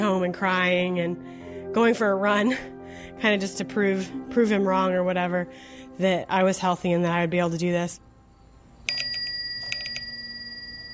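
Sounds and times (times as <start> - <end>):
speech: 0.0 - 8.1
bicycle bell ringing passing a house: 8.9 - 10.9.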